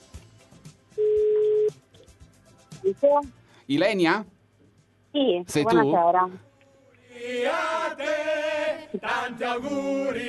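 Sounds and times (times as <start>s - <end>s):
electronic ring tone of an outgoing phone call: 1.0s - 1.8s
speech: 2.9s - 4.4s, 5.2s - 6.5s, 7.2s - 10.2s.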